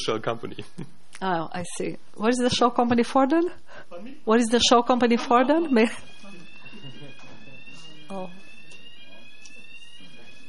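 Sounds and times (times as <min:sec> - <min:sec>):
speech: 0:00.0 - 0:06.1, 0:08.1 - 0:08.4
steady high-pitched alarm tone from an alarm system: 0:02.5 - 0:10.4.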